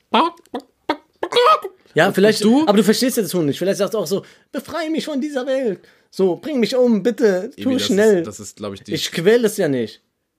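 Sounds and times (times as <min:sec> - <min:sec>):
person imitating a clucking chicken: 0:00.0 - 0:01.8, 0:07.6 - 0:08.1
speech: 0:02.0 - 0:10.1.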